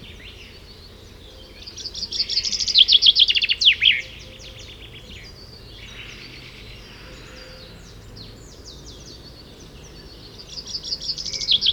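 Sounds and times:
common chaffinch Fringilla coelebs singing a cascading phrase: 0.0s - 11.7s.

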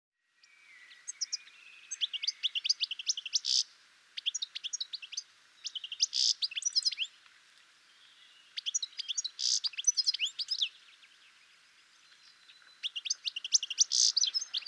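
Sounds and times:
European goldfinch Carduelis carduelis twittering: 0.8s - 7.1s, 8.6s - 10.8s, 12.2s - 14.6s.

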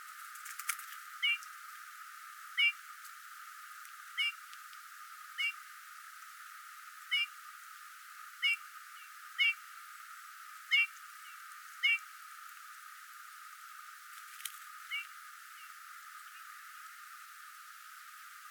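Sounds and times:
quiet hiss: 0.0s - 18.4s
Eurasian bullfinch (Pyrrhula pyrrhula) soft piping calls: 1.2s - 1.5s, 2.5s - 2.8s, 4.2s - 4.4s, 5.4s - 5.6s, 7.1s - 7.3s, 8.4s - 9.6s, 10.7s - 12.1s, 14.8s - 16.5s.

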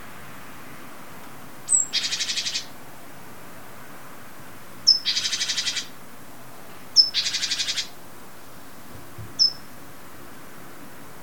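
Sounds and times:
great tit Parus major churring calls: 1.7s - 2.7s, 4.9s - 5.9s, 7.0s - 7.9s, 9.4s - 9.7s.

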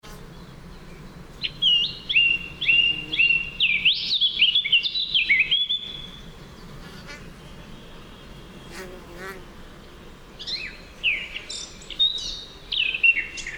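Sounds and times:
faint background hiss: 0.0s - 13.5s
Eurasian blackcap song: 0.1s - 13.5s.

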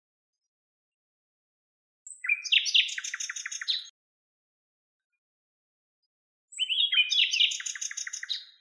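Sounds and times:
common nightingale Luscinia megarhynchos song: 2.0s - 4.0s, 6.5s - 8.5s.

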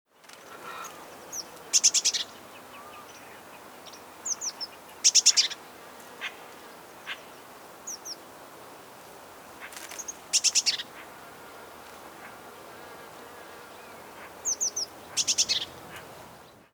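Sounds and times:
background hiss: 0.2s - 16.7s
Eurasian blue tit Cyanistes caeruleus ticking calls: 0.7s - 2.4s, 3.9s - 5.6s, 9.6s - 11.0s, 14.4s - 16.1s.

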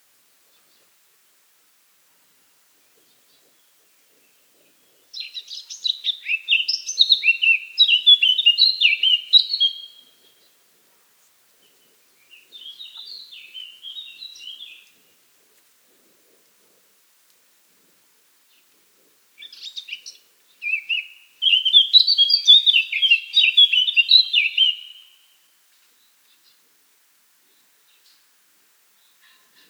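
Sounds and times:
Eurasian blackcap Sylvia atricapilla song: 3.5s - 10.5s, 12.2s - 15.0s, 19.4s - 25.2s.

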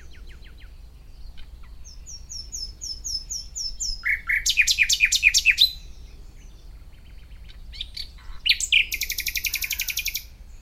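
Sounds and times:
common nightingale Luscinia megarhynchos song phrase: 0.0s - 10.6s.

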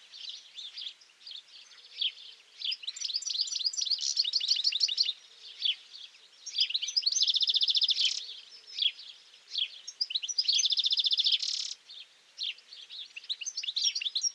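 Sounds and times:
European goldfinch Carduelis carduelis twittering song: 0.0s - 14.3s.

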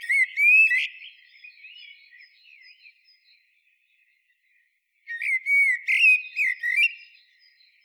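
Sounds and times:
common blackbird Turdus merula singing a mellow whistled phrase: 0.0s - 3.4s, 5.1s - 7.8s.

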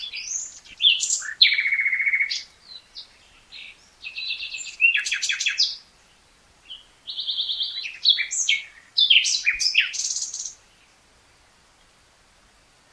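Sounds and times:
Common nightingale Luscinia megarhynchos singing whistles and trills: 0.0s - 5.8s, 6.6s - 10.9s.

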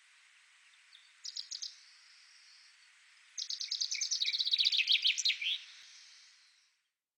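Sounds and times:
common chaffinch Fringilla coelebs singing: 1.2s - 1.8s, 3.4s - 5.9s.

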